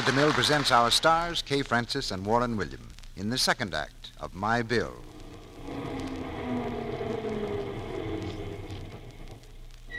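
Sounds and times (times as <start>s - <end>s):
speech: 0.0s - 5.1s
crowded bus engine rumbling and whining: 4.9s - 9.7s.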